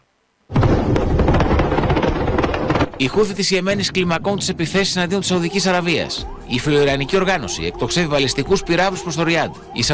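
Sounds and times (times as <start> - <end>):
barrage of rumbling explosions with sharp cracks and booms: 0.5 - 7.0
speech: 3.0 - 9.9.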